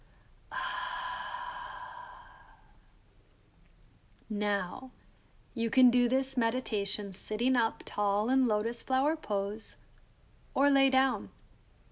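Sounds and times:
forceful exhale through the nose during a breathing exercise: 0:00.5 - 0:02.8
speech: 0:04.3 - 0:05.0, 0:05.6 - 0:09.8, 0:10.6 - 0:11.4.

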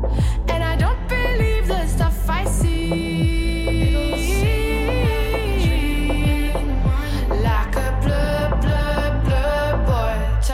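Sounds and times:
deep pitch-dropping bass drum hits: 0:00.0 - 0:10.2.

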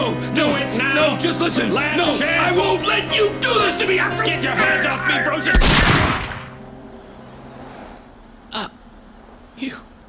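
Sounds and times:
speech: 0:00.4 - 0:06.3
gunshots during a tense confrontation: 0:05.5 - 0:06.6.

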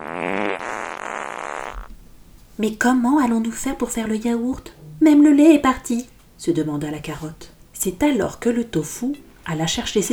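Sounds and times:
drawn-out buzzing fart sound effect: 0:00.0 - 0:01.9
speech: 0:02.6 - 0:10.1.

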